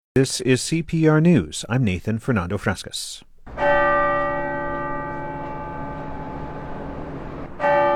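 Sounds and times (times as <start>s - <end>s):
speech: 0.2s - 4.0s
large cathedral basilica bells ringing in Denver Colorado: 3.3s - 7.9s.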